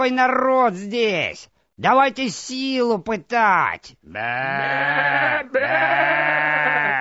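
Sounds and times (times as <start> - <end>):
speech: 0.0 - 6.9
goat and ram bleating: 4.0 - 6.9.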